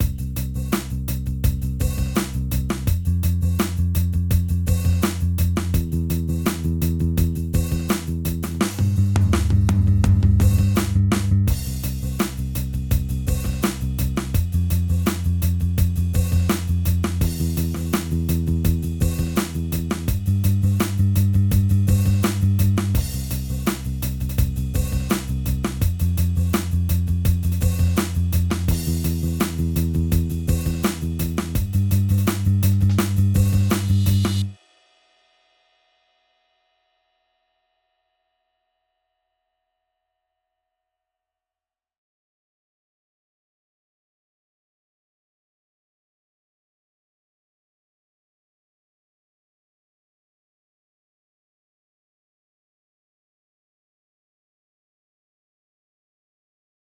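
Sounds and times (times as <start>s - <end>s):
dry bass: 0.0s - 34.6s
dry drums: 0.0s - 36.2s.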